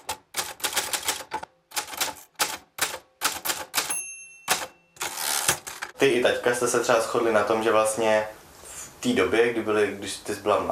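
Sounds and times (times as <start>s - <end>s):
old typewriter key strikes while copying text: 0.0s - 5.8s
old typewriter bell-like ring: 3.4s - 5.6s
speech: 6.0s - 8.4s, 9.0s - 10.6s.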